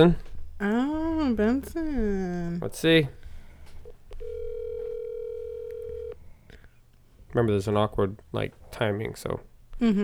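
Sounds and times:
speech: 0.0 - 3.2, 7.3 - 10.0
faint noise: 0.0 - 10.0
telephone dial tone while placing a call: 4.2 - 6.2.

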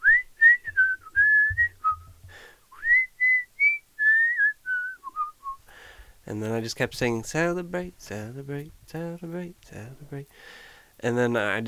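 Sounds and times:
person whistling a melody: 0.0 - 5.6
speech: 6.3 - 11.6.

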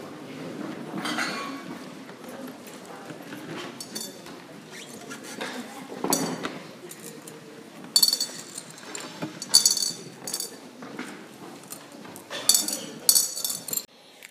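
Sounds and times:
murmuring room with faint voices: 0.0 - 13.9
small glass stones dropped into a glass bowl at a church: 3.8 - 4.3, 8.0 - 10.6, 11.7 - 13.9.

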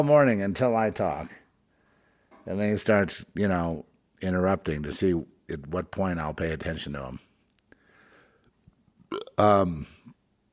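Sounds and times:
speech: 0.0 - 1.4, 2.4 - 7.3, 9.1 - 10.0
loud burp during a broadcast: 9.0 - 10.1.

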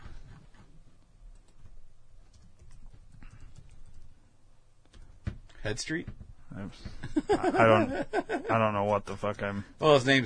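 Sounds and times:
low hum: 0.0 - 10.2
typing on a computer keyboard to enter a search query: 1.3 - 4.2
speech: 5.6 - 10.2
laughter: 7.0 - 8.7.

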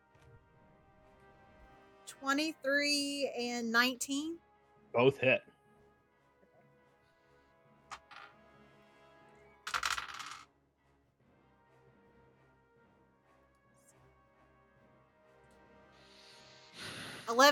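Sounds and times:
speech: 2.1 - 5.5, 17.3 - 17.5
dice rolling and clattering across a hard surface: 7.9 - 8.4, 9.7 - 10.5.

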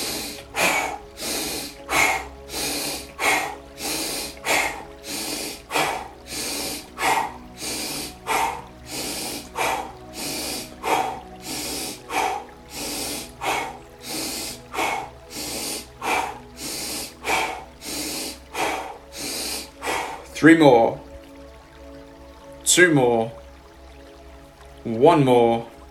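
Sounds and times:
deep nasal inhales during an energising breathwork practice: 0.0 - 20.3
forced mouth exhales during an energising breathwork practice: 0.0 - 20.3
speech: 20.4 - 21.1, 22.8 - 23.4, 24.9 - 25.7.

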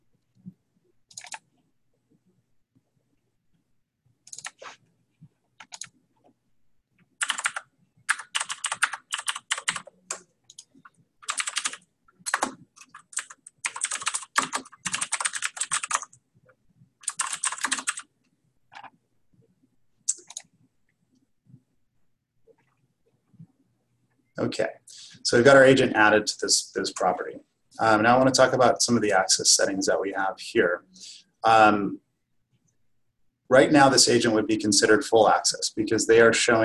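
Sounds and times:
typing on a computer keyboard: 1.1 - 1.5, 4.2 - 4.7, 5.6 - 6.0, 7.2 - 16.2, 17.0 - 18.1, 20.1 - 20.5
speech: 24.5 - 32.0, 33.5 - 36.6.

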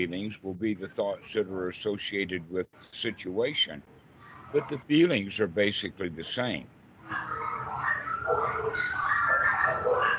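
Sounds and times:
speech: 0.0 - 7.5, 8.3 - 9.0
several dogs barking and yipping: 7.0 - 10.1.

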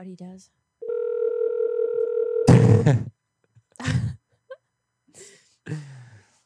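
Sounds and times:
telephone dial tone while calling a realtor: 0.8 - 2.5.

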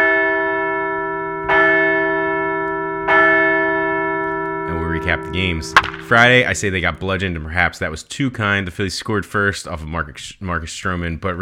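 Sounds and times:
large bell ringing for a series win: 0.0 - 7.3
speech: 5.0 - 11.4.

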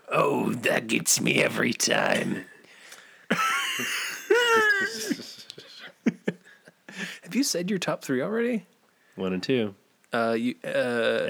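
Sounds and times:
speech: 0.1 - 2.5, 7.4 - 11.2
raspy wheezing smoker's cough fit: 3.3 - 5.5
laughter: 3.3 - 7.2.

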